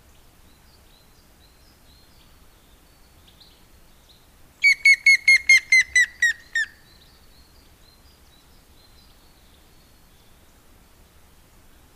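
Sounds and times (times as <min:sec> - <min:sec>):
grey-headed woodpecker giving loud ringing whistled notes: 0:04.6 - 0:06.8.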